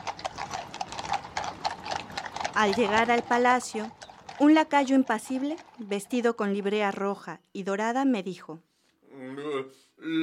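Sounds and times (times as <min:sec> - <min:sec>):
carriage rolling along: 0:00.0 - 0:07.3
hooves of a rented horse pulling a carriage clip-clopping: 0:00.0 - 0:07.4
speech: 0:02.6 - 0:10.2.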